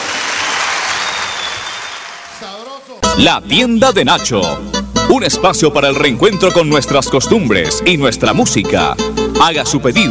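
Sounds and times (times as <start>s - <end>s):
crowd applause: 0.0s - 2.9s
speech: 3.2s - 10.1s.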